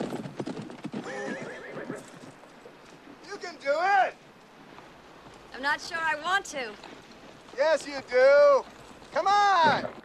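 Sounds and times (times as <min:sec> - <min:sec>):
ridden horse whinnying: 0:00.0 - 0:02.4
ridden horse hooves clattering: 0:00.0 - 0:10.0
speech: 0:05.6 - 0:07.0, 0:07.6 - 0:10.0.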